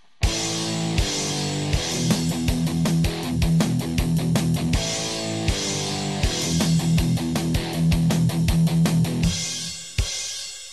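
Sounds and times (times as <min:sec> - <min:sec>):
rock guitar riff: 0:00.2 - 0:10.1.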